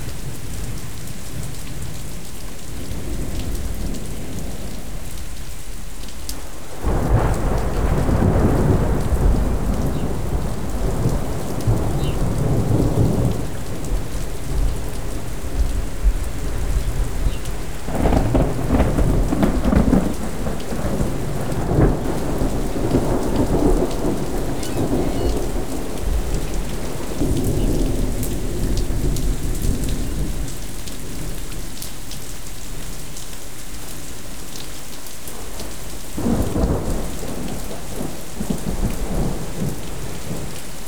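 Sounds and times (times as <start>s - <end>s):
rain: 0.0s - 40.8s
thunder: 6.8s - 31.4s, 36.2s - 40.6s.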